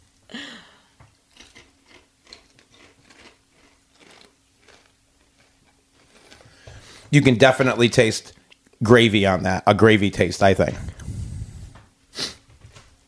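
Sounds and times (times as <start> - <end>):
chewing a crunchy potato chip: 1.1 - 6.5
speech: 7.1 - 11.0.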